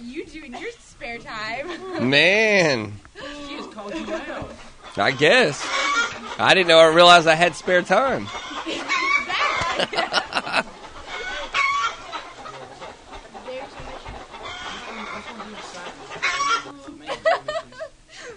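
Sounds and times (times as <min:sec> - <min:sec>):
chickens clucking: 0:00.0 - 0:18.3
speech: 0:00.2 - 0:03.1, 0:03.8 - 0:08.6
laughter: 0:01.4 - 0:18.3.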